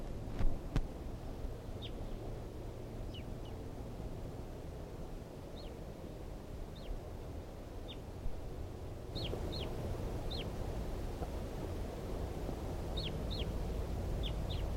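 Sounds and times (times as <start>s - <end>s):
low background rumble: 0.0s - 14.7s
wild type 2 Red Crossbill calls: 9.2s - 10.5s, 13.0s - 13.6s, 14.2s - 14.7s.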